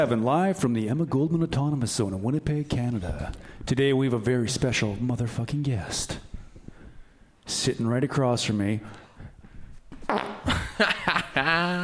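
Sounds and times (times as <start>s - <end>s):
speech: 0.0s - 6.3s, 7.5s - 9.3s, 10.1s - 11.8s
fart noise: 10.0s - 10.7s
laughter: 10.4s - 11.8s.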